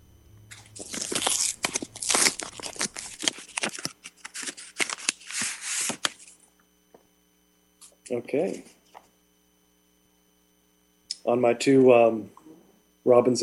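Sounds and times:
paper envelope being torn open: 0:00.5 - 0:06.4
speech: 0:08.1 - 0:08.7, 0:11.3 - 0:12.4, 0:13.0 - 0:13.4.

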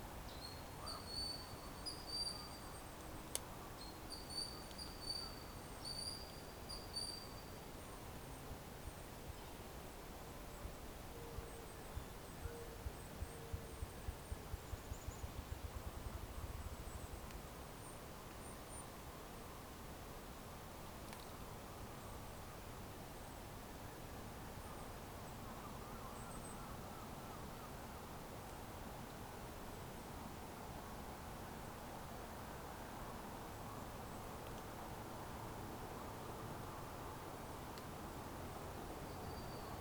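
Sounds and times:
low rumble and hiss outdoors at night in spring: 0:00.0 - 0:39.8.

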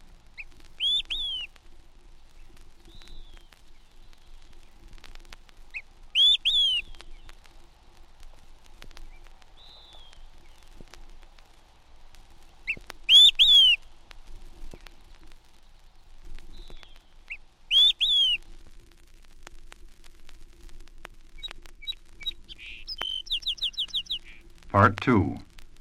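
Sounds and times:
faint ambient rustle outdoors: 0:00.0 - 0:25.7
olive-sided flycatcher emphatic whistled song: 0:00.4 - 0:01.5, 0:02.8 - 0:04.3, 0:05.7 - 0:07.3, 0:09.1 - 0:10.6, 0:12.6 - 0:13.9, 0:16.5 - 0:18.4, 0:21.4 - 0:24.4
speech: 0:24.8 - 0:25.4.

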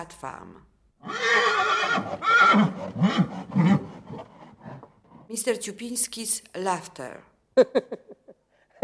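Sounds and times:
speech: 0:00.0 - 0:04.2, 0:05.3 - 0:08.2
Arabian horse on a stud farm neighing with shrill whinny and snorts: 0:01.0 - 0:04.9.

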